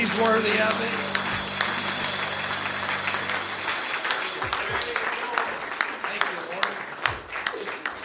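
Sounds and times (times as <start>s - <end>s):
low hum: 0.0s - 4.6s
audience clapping hands in praise: 0.0s - 8.0s
speech: 0.2s - 1.2s.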